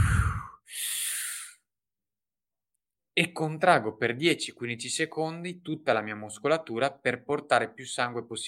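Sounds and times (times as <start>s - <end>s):
deep forceful mouth breaths in a breathing exercise: 0.0s - 1.6s
speech: 3.2s - 8.4s.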